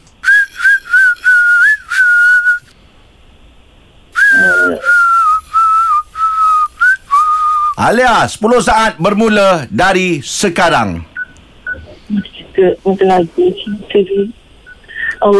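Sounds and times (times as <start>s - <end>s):
people whistling a song tune: 0.2s - 2.7s, 4.2s - 7.8s
speech: 7.8s - 11.1s, 12.1s - 14.4s.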